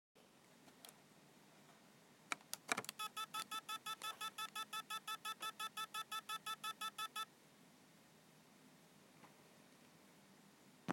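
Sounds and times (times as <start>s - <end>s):
HDD recovery beep: 2.9s - 7.3s.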